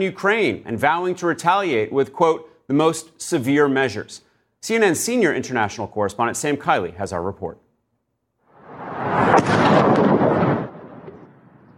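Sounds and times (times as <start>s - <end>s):
speech: 0.0s - 7.6s
heavy booming blast from a drone attack: 8.6s - 11.7s.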